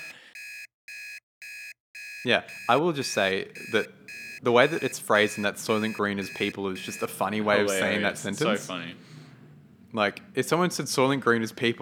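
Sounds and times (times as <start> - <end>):
electronic timer alarm beeping: 0.0 - 7.4
speech: 2.2 - 9.2, 9.9 - 11.8.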